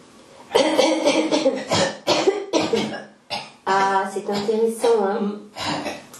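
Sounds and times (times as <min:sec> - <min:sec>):
small raspy throat-clearing cough: 0:00.5 - 0:03.6, 0:05.6 - 0:06.0
speech: 0:04.2 - 0:05.4.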